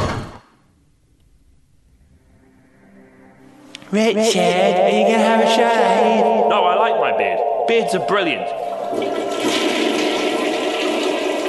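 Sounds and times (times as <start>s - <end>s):
speech: 3.9s - 9.6s
toilet flushing: 8.6s - 11.4s.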